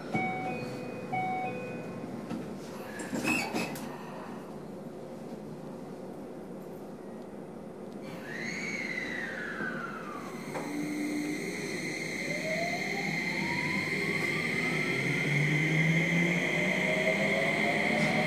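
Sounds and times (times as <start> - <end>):
steady rumbling subway station ambience: 0.0 - 18.2
subway train door chiming warning tone: 0.2 - 2.0
subway train doors sliding shut: 2.2 - 4.0.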